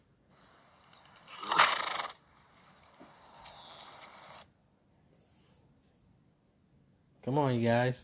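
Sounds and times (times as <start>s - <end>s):
horse neighing: 1.3s - 2.2s
speech: 7.3s - 8.0s.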